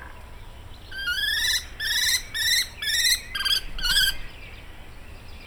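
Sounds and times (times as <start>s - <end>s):
common kestrel calling in spring: 0.9s - 4.5s
woodpecker in spring: 1.0s - 4.2s.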